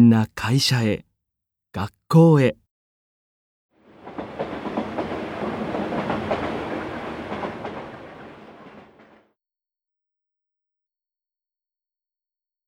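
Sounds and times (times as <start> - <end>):
speech: 0.0 - 1.1, 1.7 - 2.6
11-car Yamanote Line commuter train running on rails through central Tokyo: 3.8 - 9.3.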